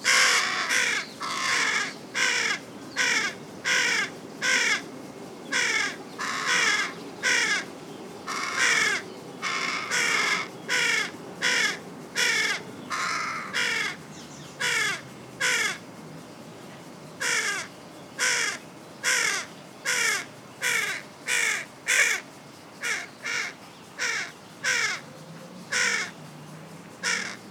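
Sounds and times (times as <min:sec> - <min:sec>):
carrion crow Corvus corone cawing: 0:00.1 - 0:04.8, 0:05.5 - 0:07.7, 0:08.3 - 0:14.0, 0:14.6 - 0:15.8, 0:17.2 - 0:22.2, 0:22.8 - 0:25.0, 0:25.7 - 0:26.1, 0:27.0 - 0:27.4.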